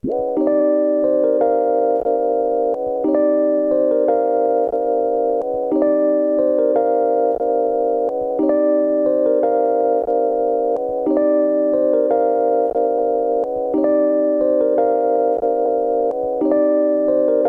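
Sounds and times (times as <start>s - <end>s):
tape loop melody: 0.0s - 17.4s.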